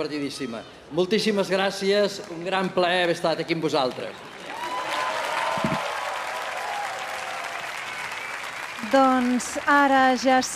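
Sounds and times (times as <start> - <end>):
speech: 0.0 - 4.3, 8.9 - 10.5
audience applause after orchestral concert: 4.1 - 10.1.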